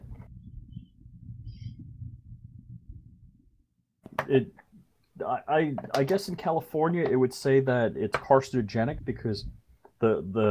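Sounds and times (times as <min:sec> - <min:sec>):
low scraping rumble of a box forced open against suction: 0:00.0 - 0:03.7
speech: 0:04.3 - 0:04.6, 0:05.2 - 0:10.5.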